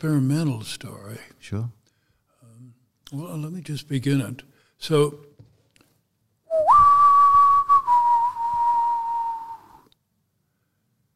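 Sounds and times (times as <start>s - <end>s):
speech: 0.0s - 1.8s, 3.1s - 5.3s
man whistling a call for children to come home: 6.5s - 9.9s.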